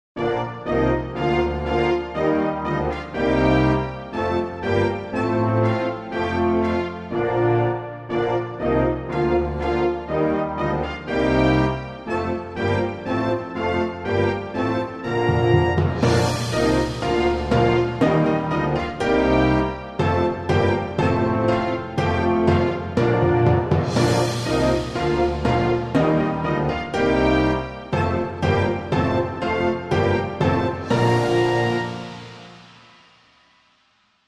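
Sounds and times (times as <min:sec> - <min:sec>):
instrumental music: 0:00.2 - 0:34.2.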